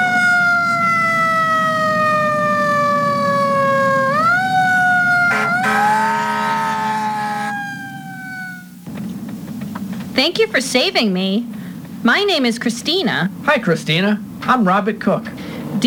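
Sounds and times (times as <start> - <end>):
loud ambulance siren wailing: 0.0 - 8.8
low engine rumble: 0.0 - 15.8
burst of broadband noise: 5.1 - 11.1
speech: 10.2 - 15.8.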